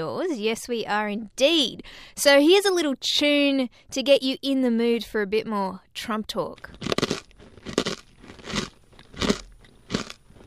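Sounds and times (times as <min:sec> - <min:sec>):
speech: 0:00.0 - 0:06.9
loud crunchy chewing: 0:06.7 - 0:10.4.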